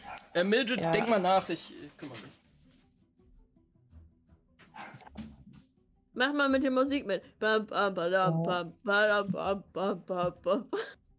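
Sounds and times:
upset dog barking: 0.0 - 1.2, 4.8 - 5.0
speech: 0.4 - 2.4, 6.2 - 11.0
shuffling noises: 1.8 - 2.9.

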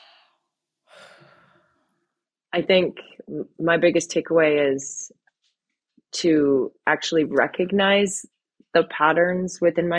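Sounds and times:
deep breath during a guided reflection exercise: 0.0 - 1.9
speech: 2.6 - 5.2, 6.1 - 9.9.

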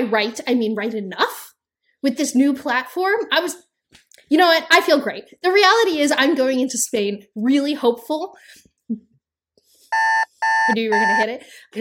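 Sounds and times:
speech: 0.0 - 9.1, 9.9 - 11.7
loud harsh electronic alarm buzzer: 9.9 - 11.2.

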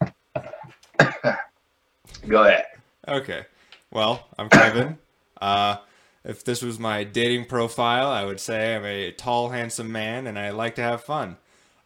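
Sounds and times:
person coughing: 0.4 - 1.5, 4.5 - 4.9
speech: 1.0 - 1.5, 2.2 - 11.4.

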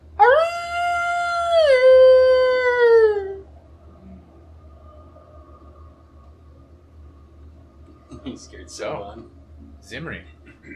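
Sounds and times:
faint low hum: 0.0 - 10.7
wolf howling: 0.1 - 3.5
speech: 8.4 - 10.7.

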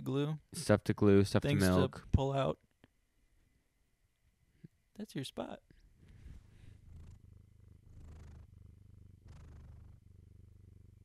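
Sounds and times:
speech: 0.0 - 2.6, 5.0 - 5.7
cat purring: 6.0 - 11.0.

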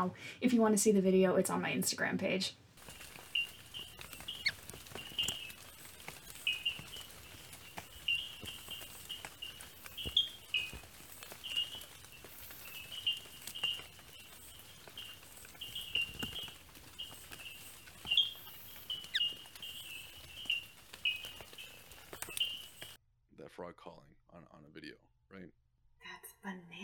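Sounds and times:
speech: 0.0 - 2.6
faint outdoor hiss: 0.0 - 23.0
small frog giving high thin chirping calls in a nature reserve: 2.8 - 23.0.

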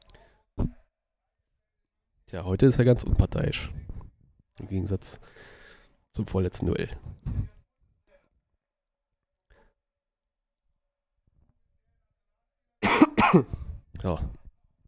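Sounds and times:
speech: 2.3 - 3.9, 4.6 - 7.5, 13.3 - 14.4
speaker with a lingering cough coughing: 12.8 - 13.7.

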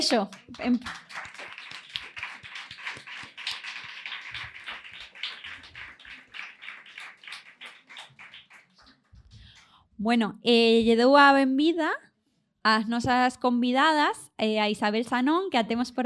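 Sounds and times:
speech: 0.0 - 1.4, 10.0 - 16.0
audience applause: 0.3 - 9.0.

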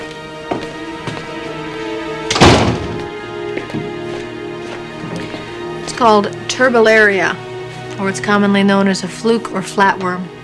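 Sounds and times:
door swinging shut with a solid thud: 2.3 - 3.1
speech: 6.0 - 7.4, 8.0 - 10.4.

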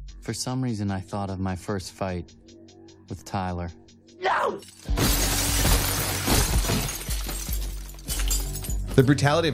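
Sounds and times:
speech: 0.3 - 2.6, 3.1 - 5.2, 8.9 - 9.5
glass shattering with breaking shards and crackling debris: 4.6 - 9.2
man throwing himself into a shelf: 4.9 - 7.3.

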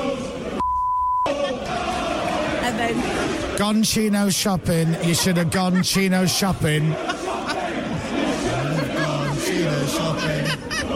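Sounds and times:
football fans chanting: 0.0 - 0.6, 1.2 - 10.9
high-pitched censor beep: 0.6 - 1.3
laughter: 1.3 - 1.9, 4.3 - 10.9
speech: 2.8 - 7.1.

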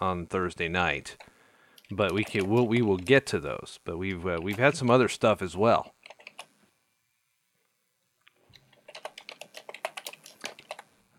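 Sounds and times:
speech: 0.0 - 1.3, 1.9 - 6.0
loud computer keyboard typing: 1.8 - 3.3, 4.1 - 5.0, 5.9 - 6.5, 8.5 - 10.9.

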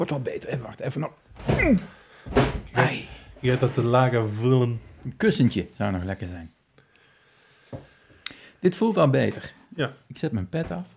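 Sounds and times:
speech: 0.0 - 6.6, 8.6 - 10.9
person putting feet up onto a chair: 1.4 - 2.8.

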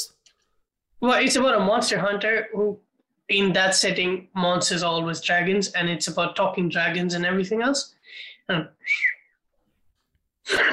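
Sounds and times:
speech: 1.0 - 9.2, 10.5 - 10.7
person whistling a short sliding note: 8.8 - 9.4.

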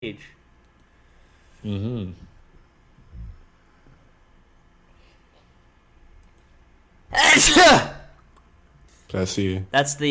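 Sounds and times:
speech: 0.1 - 0.4, 1.6 - 2.3, 7.4 - 7.9, 9.1 - 10.0
loud explosive sneeze: 7.1 - 8.1.

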